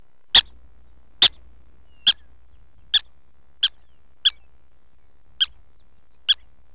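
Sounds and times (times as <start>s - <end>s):
faint low hum: 0.0s - 6.7s
prairie dog sharp harmonic chirping barks: 0.3s - 0.6s, 1.2s - 4.5s, 5.4s - 6.5s.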